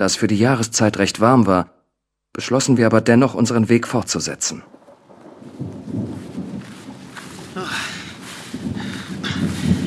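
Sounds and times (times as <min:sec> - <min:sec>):
speech: 0:00.0 - 0:04.8
heavy rain with hissing downpour: 0:04.1 - 0:09.8
low rolling thunder: 0:04.5 - 0:09.8.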